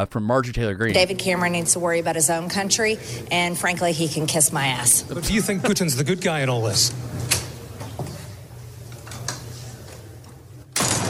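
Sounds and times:
speech: 0.0 - 7.4
steady hum: 0.8 - 11.0
door slamming shut: 10.8 - 11.0.

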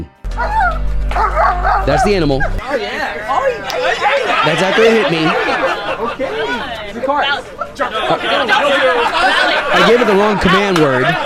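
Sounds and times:
speech: 0.0 - 0.6, 1.2 - 11.2
crowd of about 50 to 60 men chattering on an outdoor patio: 1.8 - 11.2
laughter: 2.7 - 11.2.

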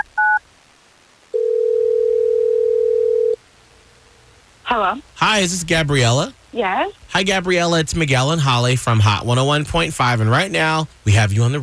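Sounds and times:
telephone keypad beeps: 0.0 - 0.4
steady two-second telephone ringback tone: 1.4 - 3.4
speech: 4.7 - 11.6.

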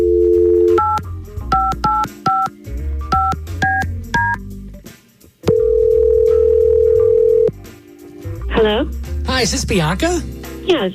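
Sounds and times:
telephone dial tone: 0.0 - 1.0, 5.5 - 7.5
touch-tone dialing beeps: 0.0 - 2.5, 3.1 - 4.4, 5.5 - 7.5
speech: 9.4 - 10.9.

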